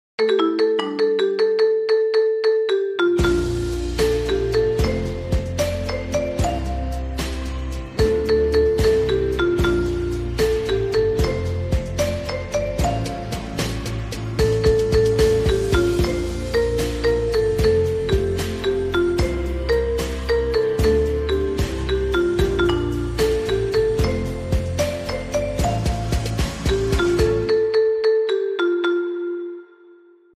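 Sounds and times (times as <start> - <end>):
marimba playing: 0.2 - 30.0.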